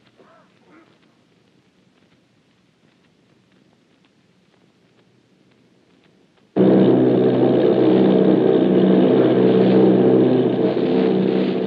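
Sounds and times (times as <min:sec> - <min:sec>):
bomber plane engines droning: 0:06.6 - 0:11.6.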